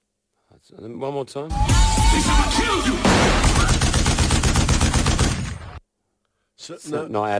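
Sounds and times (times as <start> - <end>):
speech: 0.6 - 3.8, 6.7 - 7.3
loud pyrotechnic concussion blasts at a live concert: 2.9 - 5.8.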